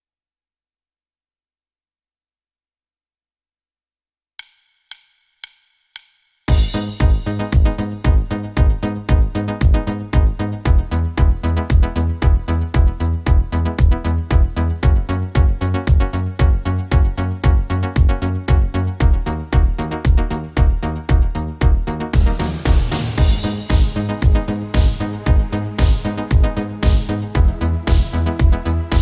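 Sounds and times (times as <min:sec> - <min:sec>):
italo disco style music on a Korg Pa5x keyboard: 0:06.5 - 0:29.0.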